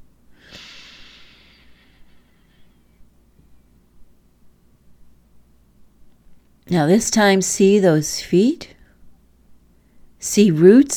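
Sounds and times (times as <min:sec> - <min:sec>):
faint low hum: 0:00.0 - 0:10.9
deep breath drawn in during a guided meditation: 0:00.4 - 0:02.8
speech: 0:06.7 - 0:08.8, 0:10.2 - 0:10.9.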